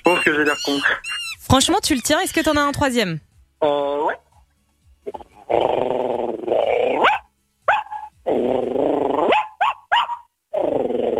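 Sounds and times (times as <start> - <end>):
voice imitating a tiny dog's bark: 0.0 - 2.2, 3.8 - 4.3, 6.6 - 8.1, 9.2 - 10.7
speech: 0.0 - 4.2, 5.0 - 7.0
voice imitating a big dog's deep rumbling growl: 3.6 - 4.2, 5.1 - 7.1, 10.5 - 11.1.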